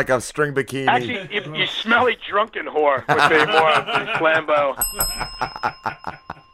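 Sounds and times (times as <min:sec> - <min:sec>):
speech: 0:00.0 - 0:06.3
laughter: 0:00.7 - 0:06.5
small bell ringing: 0:04.8 - 0:06.5.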